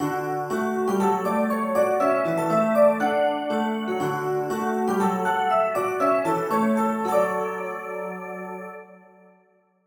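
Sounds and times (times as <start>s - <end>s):
melody: 0.0s - 8.8s.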